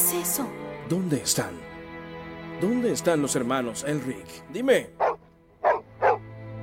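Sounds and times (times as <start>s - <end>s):
speech: 0.1s - 1.7s, 2.6s - 5.0s
dog barking at a visitor: 5.0s - 6.3s.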